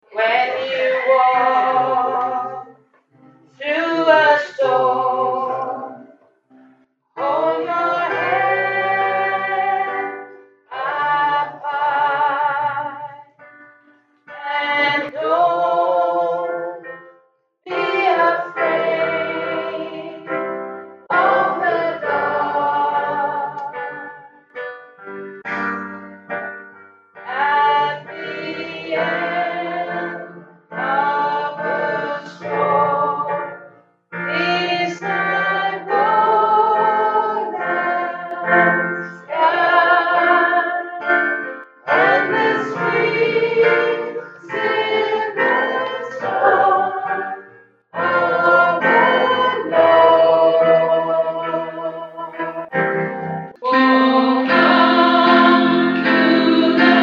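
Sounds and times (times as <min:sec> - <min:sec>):
alto voice part singing: 0:00.0 - 0:02.7, 0:03.5 - 0:06.1, 0:07.2 - 0:13.2, 0:14.3 - 0:16.9, 0:17.7 - 0:20.4, 0:21.1 - 0:24.1, 0:27.2 - 0:33.6, 0:34.2 - 0:52.9, 0:53.5 - 0:57.0.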